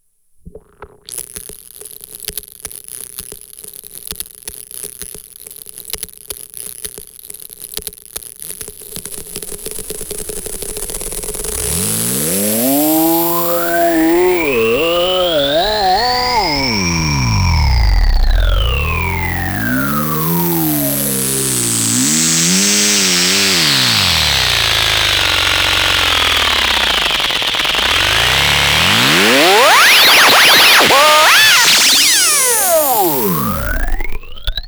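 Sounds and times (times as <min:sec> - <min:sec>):
vocal with sweep effect: 0:11.9 - 0:34.4.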